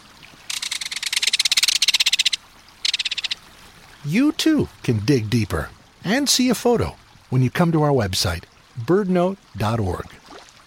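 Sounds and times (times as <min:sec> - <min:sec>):
belted kingfisher rattle call: 0:00.5 - 0:03.4
speech: 0:04.0 - 0:10.2.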